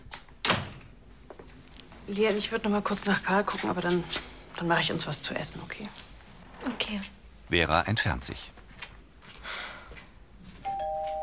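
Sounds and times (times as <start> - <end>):
door pushed shut with a heavy thud: 0.4 - 1.0
speech: 2.1 - 8.6.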